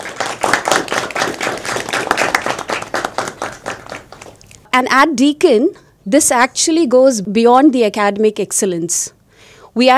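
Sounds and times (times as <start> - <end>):
large crowd applauding: 0.0 - 4.4
speech: 4.8 - 9.2, 9.8 - 9.9.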